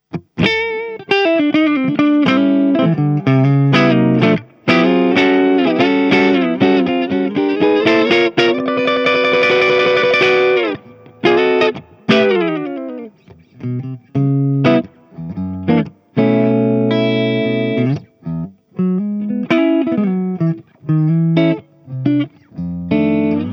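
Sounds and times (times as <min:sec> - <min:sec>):
clean ES335 guitar: 0:00.0 - 0:23.5.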